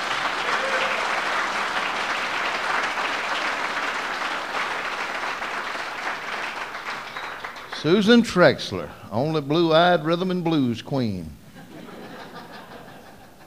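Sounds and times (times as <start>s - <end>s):
audience clapping and applauding for singers: 0.0s - 8.8s
speech: 7.8s - 11.4s
laughter: 11.5s - 13.4s.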